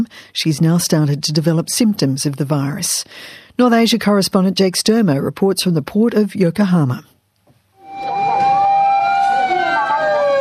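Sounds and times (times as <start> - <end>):
speech: 0.0 - 7.1
ambulance and fire engine sirens wailing at a port: 7.8 - 10.4.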